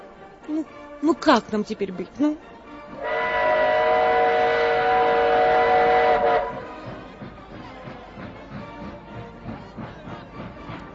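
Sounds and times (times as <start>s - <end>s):
speech: 0.5s - 3.1s
train wheels clattering over rail joints: 2.9s - 10.9s
train horn: 3.0s - 7.0s.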